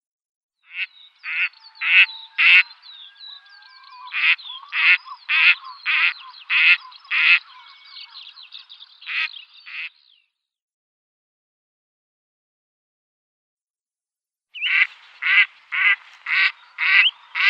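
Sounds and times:
female Gadwall harsh quacking flight calls: 0.7 - 2.7, 4.1 - 7.7, 9.1 - 10.0, 14.6 - 17.4
speech: 0.8 - 2.8, 4.3 - 7.6.

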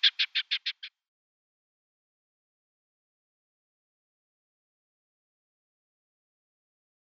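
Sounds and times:
male rock partridge and red-legged partridge hybrid display call: 0.0 - 0.9.

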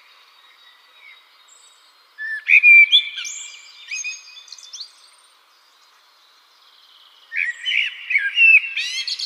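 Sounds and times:
Eurasian blackbird song: 0.0 - 9.2.

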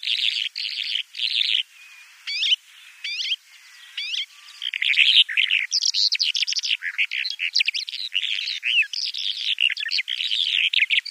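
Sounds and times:
bimaculated lark song: 0.0 - 11.0.

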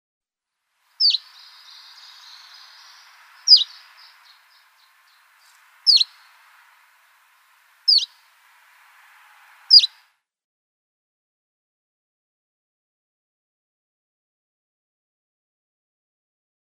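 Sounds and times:
Canary Islands chiffchaff calls: 0.9 - 10.0.

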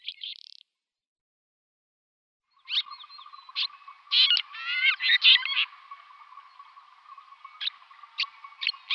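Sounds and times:
red-rumped swallow chirps and scratchy twittering warble: 2.5 - 8.9.

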